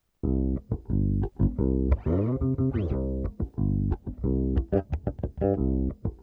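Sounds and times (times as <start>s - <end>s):
vaneira bass loops: 0.2s - 6.2s.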